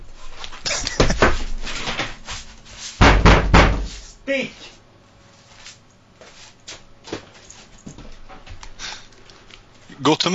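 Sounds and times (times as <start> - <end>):
cat banging against a door with hollow thuds: 3.0 - 3.9
speech: 10.0 - 10.3.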